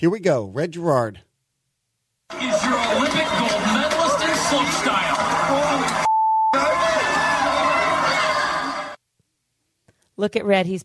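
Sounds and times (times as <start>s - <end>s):
speech: 0.0s - 1.3s, 2.3s - 3.9s, 4.5s - 6.0s, 10.2s - 10.8s
busy crowd-like talk: 2.3s - 9.0s
loud excited speech: 2.3s - 9.0s
high-pitched censor bleep over swear word: 6.1s - 6.6s.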